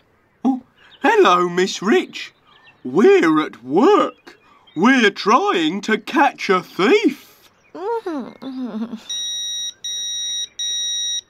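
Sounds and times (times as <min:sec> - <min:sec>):
speech: 0:01.2 - 0:07.2, 0:08.0 - 0:09.2
phone message notification beeps: 0:09.1 - 0:11.2.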